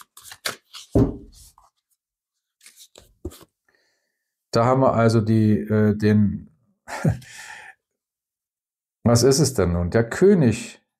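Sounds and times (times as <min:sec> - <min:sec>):
tarot cards being shuffled and handled: 0:00.0 - 0:01.8, 0:02.6 - 0:03.5
speech: 0:04.6 - 0:07.3, 0:09.1 - 0:10.9.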